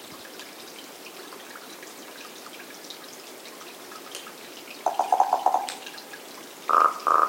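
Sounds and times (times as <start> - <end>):
common raven Corvus corax giving clear bell-like ringing calls: 4.8 - 5.8
common raven Corvus corax giving hollow knocking notes: 4.8 - 6.1, 6.7 - 7.2.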